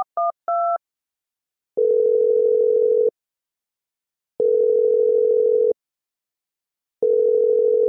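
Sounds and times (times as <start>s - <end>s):
telephone keypad dialing beeps: 0.0s - 0.8s
telephone ringing tone: 1.8s - 3.1s, 4.4s - 5.8s, 7.0s - 7.8s.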